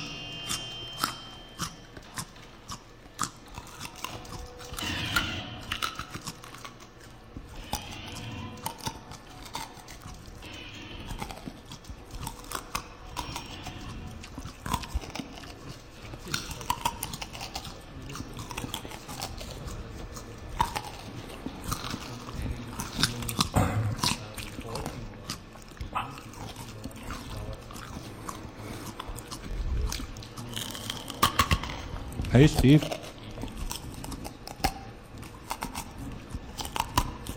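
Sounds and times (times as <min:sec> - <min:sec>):
raw carrot being chewed: 0:00.0 - 0:37.3
speech: 0:32.4 - 0:33.0.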